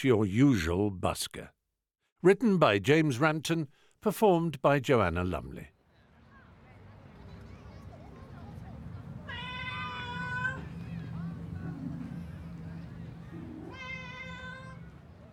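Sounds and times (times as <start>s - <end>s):
speech: 0.0s - 1.6s, 2.2s - 5.7s
cat meowing: 9.3s - 10.7s, 13.3s - 14.8s.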